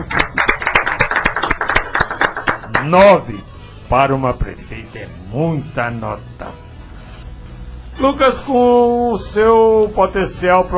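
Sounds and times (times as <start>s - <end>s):
audience applause: 0.0s - 3.0s
speech: 2.8s - 6.6s, 8.0s - 10.7s.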